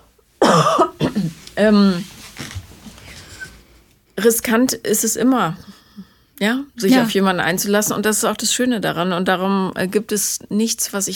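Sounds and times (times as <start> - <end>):
person coughing harshly: 0.4 - 1.4
speech: 0.6 - 2.1, 4.2 - 5.8, 6.4 - 11.1.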